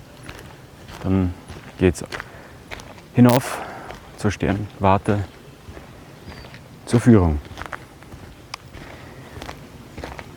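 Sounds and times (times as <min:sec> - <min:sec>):
faint footsteps: 0:00.2 - 0:06.7, 0:07.4 - 0:10.3
speech: 0:01.0 - 0:02.3, 0:03.2 - 0:05.4, 0:06.9 - 0:07.5
steady hiss: 0:03.2 - 0:07.4.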